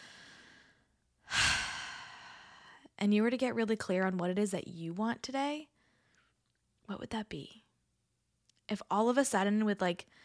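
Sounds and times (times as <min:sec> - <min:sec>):
single deep breath drawn in: 0:00.0 - 0:02.9
speech: 0:03.0 - 0:05.7, 0:06.9 - 0:07.6, 0:08.7 - 0:10.2.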